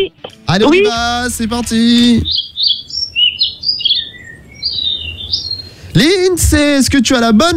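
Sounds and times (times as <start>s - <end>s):
speech: 0.0s - 2.4s, 6.0s - 7.5s
Réunion bulbul singing warbling whistled phrases in Mafate: 0.0s - 6.3s.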